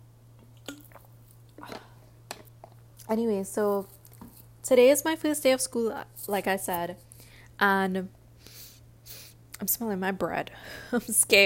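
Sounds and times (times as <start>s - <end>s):
faint steady hum: 0.0s - 11.4s
soft swallowing gulps of water: 0.4s - 2.9s
wet mouth clicks: 0.5s - 1.7s
speech: 3.1s - 4.0s, 4.7s - 8.2s, 9.6s - 11.4s.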